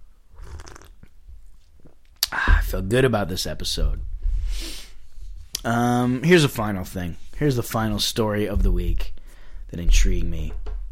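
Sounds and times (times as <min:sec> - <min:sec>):
person sipping tea: 0:00.3 - 0:01.2
person swallowing: 0:00.4 - 0:01.2
speech: 0:02.7 - 0:04.7, 0:05.6 - 0:10.8.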